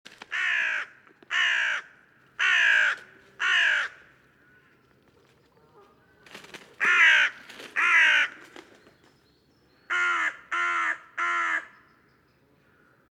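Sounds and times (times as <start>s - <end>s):
carrion crow Corvus corone cawing: 0.3s - 4.8s, 6.8s - 8.4s, 9.9s - 11.8s.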